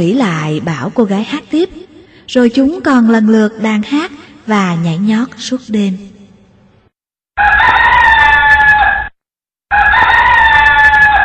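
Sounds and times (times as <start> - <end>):
speech: 0.0 - 6.2, 7.4 - 7.7
jungle fowl crowing at daybreak: 7.4 - 9.1, 9.7 - 11.2.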